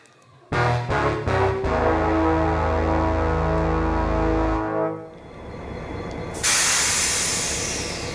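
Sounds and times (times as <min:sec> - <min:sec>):
train droning at a station: 0:00.6 - 0:08.1
sustained hiss of released air from a train: 0:06.4 - 0:08.1.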